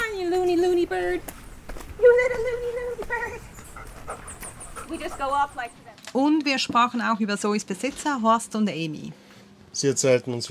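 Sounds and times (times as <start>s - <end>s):
movement: 0.0s - 6.1s
female Labrador dog panting: 3.4s - 5.8s
speech: 4.9s - 10.5s.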